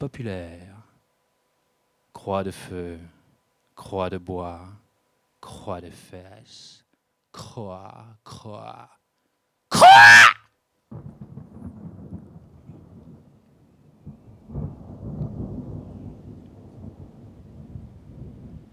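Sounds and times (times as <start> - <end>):
speech: 0.0 - 0.7, 2.2 - 3.2, 3.8 - 4.8, 5.4 - 6.8, 7.4 - 9.0, 10.0 - 10.3
low rolling thunder: 10.9 - 18.7
steady rain: 10.9 - 18.7.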